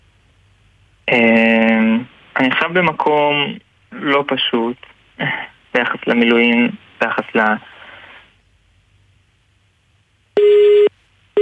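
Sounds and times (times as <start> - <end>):
speech: 1.1 - 1.4, 2.4 - 7.7
phone line beeps after a call drops: 10.4 - 11.3.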